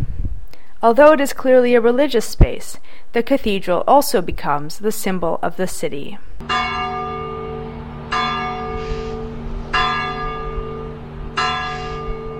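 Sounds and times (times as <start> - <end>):
speech: 0.8 - 6.7
large cathedral church bell tolling: 6.4 - 12.3.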